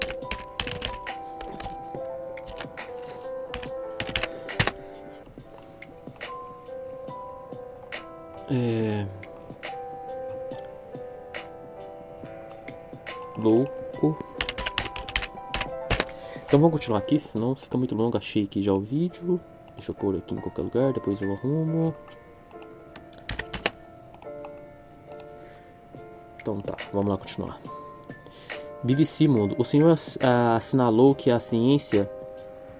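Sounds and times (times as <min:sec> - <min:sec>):
rapid computer keyboard typing: 0:00.0 - 0:04.9, 0:13.1 - 0:16.7, 0:22.5 - 0:24.5
speech: 0:08.5 - 0:08.8, 0:16.5 - 0:22.2, 0:26.5 - 0:27.8, 0:28.4 - 0:32.2.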